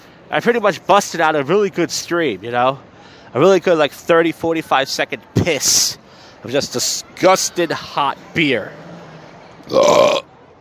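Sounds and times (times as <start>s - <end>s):
speech: 0.3s - 8.8s, 9.7s - 10.2s
burp: 9.6s - 10.3s.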